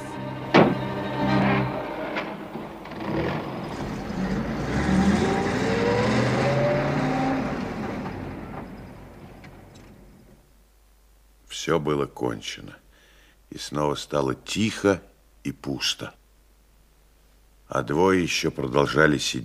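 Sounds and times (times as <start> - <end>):
car engine rumbling and revving as the vehicle pulls off: 0.0 - 10.2
car door thud: 0.5 - 0.9
speech: 11.7 - 12.8, 13.5 - 16.2, 17.7 - 19.4.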